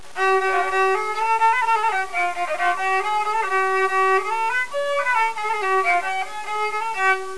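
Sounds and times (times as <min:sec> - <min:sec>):
fiddle from Turkey: 0:00.0 - 0:07.3.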